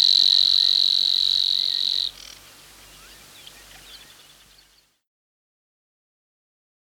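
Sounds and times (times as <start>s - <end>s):
Savi's warbler reeling insect-like song: 0.6s - 5.0s
faint soft background bird calls: 1.6s - 4.9s.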